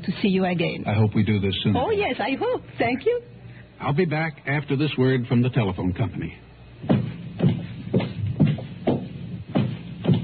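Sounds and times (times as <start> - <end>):
speech: 0.0 - 7.0
footsteps with soft thud and scuff: 6.8 - 10.2.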